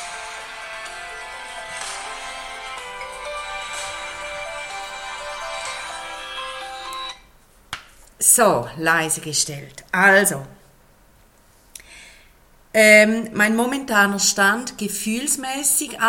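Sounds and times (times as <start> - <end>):
mobile phone ringtone electronic melody: 0.0 - 7.3
speech: 8.4 - 10.6, 12.8 - 16.0.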